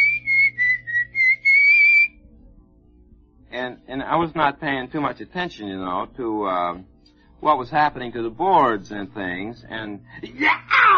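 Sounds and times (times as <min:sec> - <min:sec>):
person whistling a short bright tune: 0:00.0 - 0:02.2
speech: 0:03.6 - 0:10.9.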